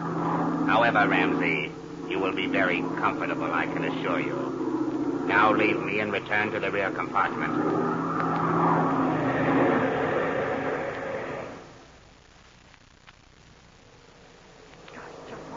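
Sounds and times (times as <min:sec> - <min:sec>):
airplane engine throttling down during descent: 0:00.0 - 0:11.8
speech: 0:00.7 - 0:04.5, 0:05.3 - 0:07.8.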